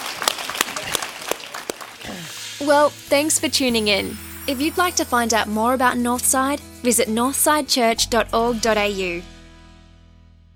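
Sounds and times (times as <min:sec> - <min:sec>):
crowd applauding: 0:00.0 - 0:02.6
speech: 0:02.6 - 0:09.3.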